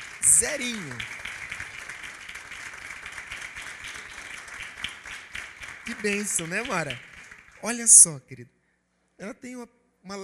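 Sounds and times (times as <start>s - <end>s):
audience applauding: 0.0s - 8.0s
speech: 0.4s - 1.2s, 5.9s - 8.6s, 9.2s - 10.2s.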